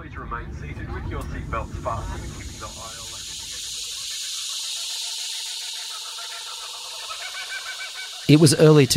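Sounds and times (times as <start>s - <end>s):
speech: 0.3s - 3.1s, 8.3s - 8.9s
cicadas buzzing on a farm at Picton, Australia, in summer: 1.8s - 8.9s.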